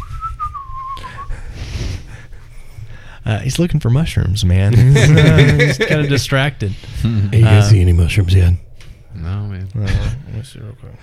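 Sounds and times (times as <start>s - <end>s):
person whistling a melodic line while walking in a cave: 0.0s - 1.4s
speech: 3.2s - 11.0s
laughter: 4.7s - 6.2s.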